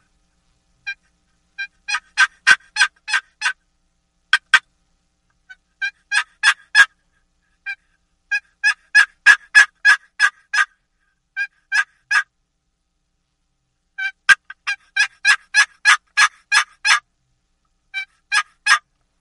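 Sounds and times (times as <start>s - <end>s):
wooden box call producing raspy plain hen turkey yelps: 0.8s - 3.6s, 4.3s - 4.7s, 5.4s - 12.3s, 14.0s - 17.1s, 17.9s - 18.9s.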